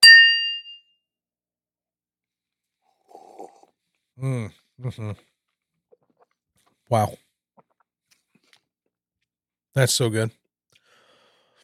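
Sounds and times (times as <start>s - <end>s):
glasses clinking in a toast: 0.0s - 0.7s
speech: 4.2s - 5.3s, 6.9s - 7.2s, 9.8s - 10.4s.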